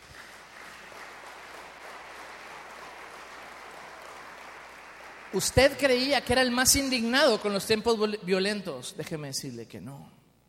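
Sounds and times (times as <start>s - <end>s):
crowd applauding: 0.0s - 6.8s
speech: 5.3s - 10.2s.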